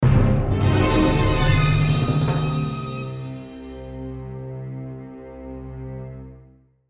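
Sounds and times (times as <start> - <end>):
dreadful orchestral percussion swell: 0.0 - 5.0
dreadful orchestral rising swell: 0.0 - 6.4.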